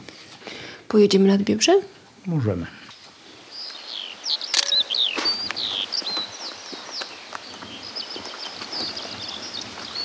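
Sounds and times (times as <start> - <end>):
speech: 0.9 - 2.8
skylark singing high warbling chirps and trills: 3.5 - 10.0.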